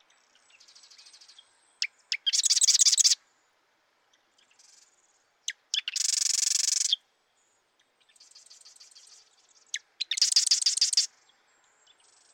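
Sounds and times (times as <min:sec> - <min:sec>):
marsh wren singing buzzy trills: 0:00.5 - 0:03.2, 0:05.5 - 0:07.0, 0:08.2 - 0:11.1.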